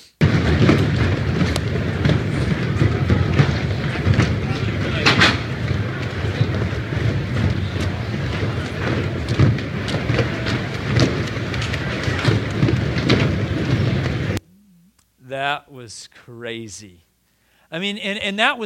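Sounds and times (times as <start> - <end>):
deep rumbling storm roar: 0.2 - 14.4
heavy rain pounding on a tent during a storm: 0.2 - 14.4
speech: 15.5 - 17.1, 17.7 - 18.6.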